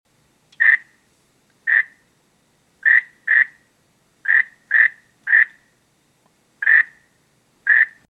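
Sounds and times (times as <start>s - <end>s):
frog croaking: 0.6s - 1.0s, 1.6s - 2.0s, 2.8s - 5.7s, 6.6s - 8.1s.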